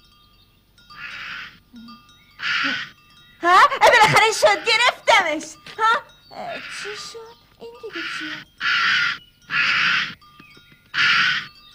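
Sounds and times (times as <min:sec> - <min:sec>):
injured crow with a wounded wing cawing harshly: 0:01.0 - 0:01.6, 0:02.4 - 0:03.0, 0:04.0 - 0:05.0, 0:06.4 - 0:07.1, 0:07.9 - 0:10.2, 0:10.9 - 0:11.6
speech: 0:02.6 - 0:09.8.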